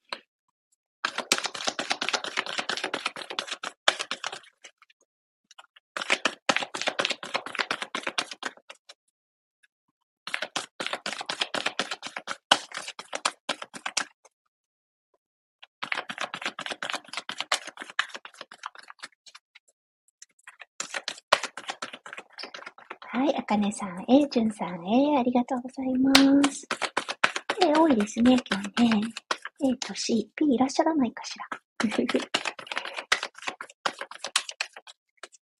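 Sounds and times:
playing cards being shuffled in rapid riffles: 1.0s - 4.8s, 5.6s - 8.9s, 10.3s - 14.2s, 15.8s - 19.4s, 20.5s - 23.0s, 26.1s - 30.0s, 31.5s - 35.4s
speech: 23.4s - 26.8s, 27.8s - 32.4s.

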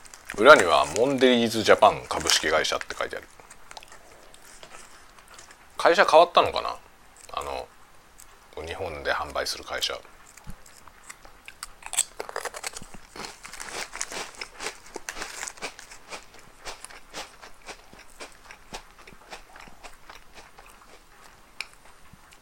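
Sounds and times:
crinkling wrapper of Ritz crackers: 0.0s - 5.5s, 10.3s - 17.8s
Ritz crackers being eaten: 0.0s - 5.8s, 9.3s - 22.3s
speech: 0.3s - 3.4s, 5.8s - 6.8s, 8.6s - 10.2s.

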